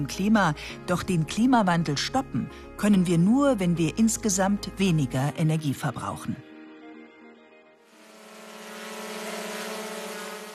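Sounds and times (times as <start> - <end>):
speech: 0.0 - 6.5
rushing whoosh: 7.9 - 10.5
unmanned delivery drone rotors humming with a multi-toned whine: 7.9 - 10.5.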